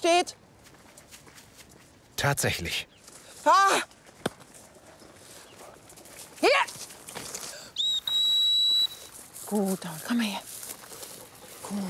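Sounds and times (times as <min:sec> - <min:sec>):
speech: 0:00.0 - 0:00.4, 0:02.2 - 0:04.0, 0:06.4 - 0:06.9, 0:09.5 - 0:10.5, 0:11.7 - 0:11.8
faint outdoor noise: 0:00.0 - 0:11.8
high-pitched whistle blasts recalling a hunting dog: 0:07.8 - 0:09.1.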